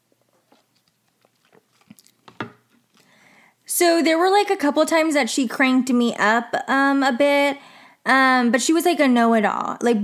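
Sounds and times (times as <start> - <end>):
person taking a small sip of a drink: 0.1 - 3.2
swallow and lip smack: 0.5 - 2.4
speech: 3.8 - 10.0.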